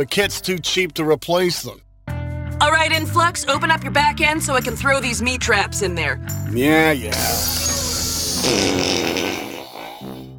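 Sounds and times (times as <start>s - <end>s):
speech: 0.0s - 1.8s, 2.6s - 7.7s, 8.4s - 9.4s
loud raspy fart: 7.2s - 10.3s.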